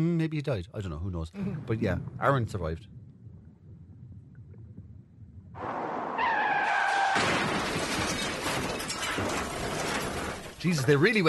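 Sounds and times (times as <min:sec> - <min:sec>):
speech: 0:00.0 - 0:03.0, 0:10.6 - 0:11.2
car tires screeching: 0:05.6 - 0:07.2
car crash with crunching metal and scattering debris: 0:05.6 - 0:10.6.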